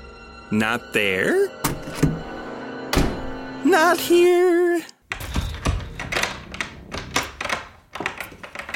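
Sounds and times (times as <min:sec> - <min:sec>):
speech: 0:00.5 - 0:02.1, 0:03.7 - 0:04.9
locked door being tried and rattled: 0:05.1 - 0:08.7.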